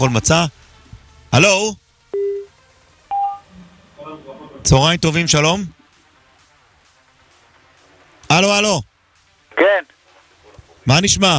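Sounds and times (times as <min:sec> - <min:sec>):
speech: 0:00.0 - 0:00.6, 0:01.3 - 0:01.8, 0:04.6 - 0:05.8, 0:08.3 - 0:08.9, 0:09.6 - 0:10.0, 0:10.9 - 0:11.3
telephone dialing beeps while placing a call: 0:02.2 - 0:02.5, 0:03.1 - 0:03.4.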